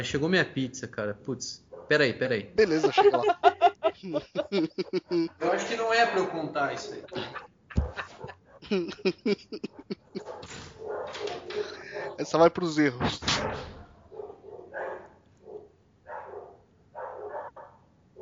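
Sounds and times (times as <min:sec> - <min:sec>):
speech: 0:00.0 - 0:07.4, 0:08.7 - 0:09.9, 0:12.2 - 0:13.5
dog barking: 0:01.7 - 0:02.0, 0:10.2 - 0:12.2, 0:13.4 - 0:18.2
laughter: 0:02.6 - 0:10.4, 0:11.3 - 0:12.3.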